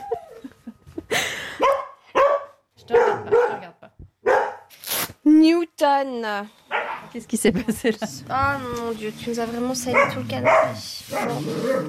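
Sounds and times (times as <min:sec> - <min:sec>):
dog barking: 0:01.6 - 0:04.7, 0:06.7 - 0:07.2, 0:09.8 - 0:11.8
speech: 0:05.4 - 0:11.8.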